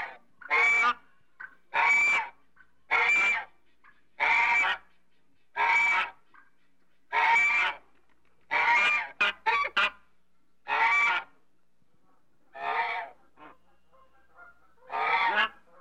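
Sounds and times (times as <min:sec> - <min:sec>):
African goose honking: 0:00.0 - 0:03.5, 0:04.2 - 0:04.9, 0:05.6 - 0:06.4, 0:07.1 - 0:07.8, 0:08.5 - 0:10.0, 0:10.7 - 0:11.4, 0:12.5 - 0:15.7.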